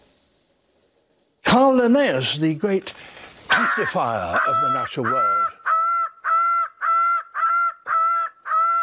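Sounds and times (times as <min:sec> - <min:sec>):
speech: 0:01.5 - 0:05.4
Greater bird of paradise calling: 0:03.5 - 0:08.8.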